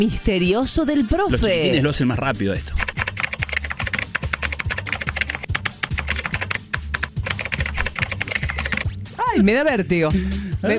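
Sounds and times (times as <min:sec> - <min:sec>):
speech: 0:00.0 - 0:02.8, 0:09.4 - 0:10.7
fast typing on a computer keyboard while chatting online: 0:02.8 - 0:08.9.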